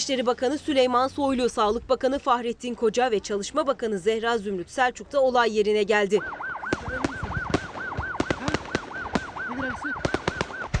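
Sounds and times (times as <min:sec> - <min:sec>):
speech: 0:00.0 - 0:07.0, 0:09.6 - 0:10.1
steady wailing siren: 0:06.1 - 0:10.7
fireworks in a burning fireworks factory depot popping and banging: 0:06.6 - 0:10.7.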